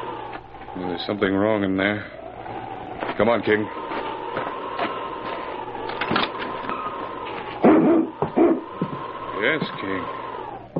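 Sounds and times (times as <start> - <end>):
speech: 0.7 - 2.2, 3.2 - 3.8, 9.4 - 10.2
husky dogs whining with a high whimper: 2.1 - 10.7
husky dog barking and yipping: 7.6 - 8.9.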